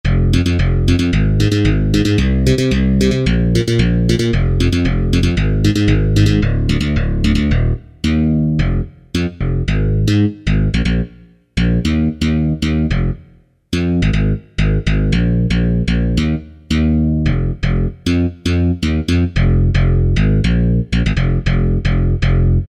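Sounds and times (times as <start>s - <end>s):
digital bass on a Kurzweil K2000 synthesizer: 0.0s - 22.6s.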